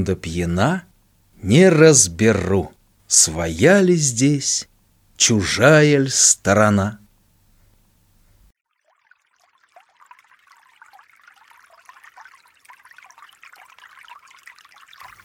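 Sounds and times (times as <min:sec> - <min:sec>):
speech: 0:00.0 - 0:07.0
water trickling and burbling: 0:08.6 - 0:15.2.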